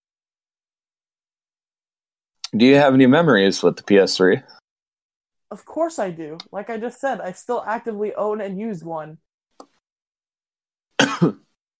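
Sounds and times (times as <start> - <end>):
speech: 2.5 - 4.6, 5.5 - 9.2, 11.2 - 11.4
stifled cough: 11.0 - 11.6.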